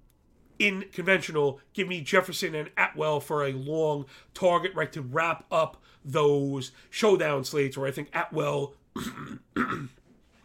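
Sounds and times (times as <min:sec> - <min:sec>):
speech: 0:00.6 - 0:10.0
sick person coughing: 0:09.0 - 0:10.0.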